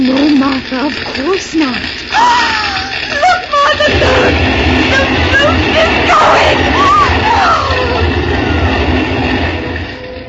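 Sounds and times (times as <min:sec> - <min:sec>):
speech: 0:00.0 - 0:05.1
fire engine heavy motor rumbling as it arrives: 0:00.0 - 0:10.2
fire engine siren wail: 0:04.9 - 0:08.6.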